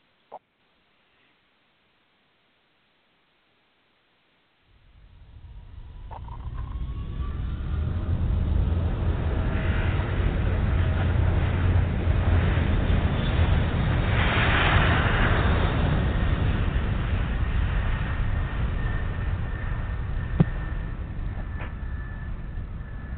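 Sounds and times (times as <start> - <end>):
faint jet engine whine: 0.0 - 23.1
jet engines roaring during aircraft takeoff: 4.9 - 23.1.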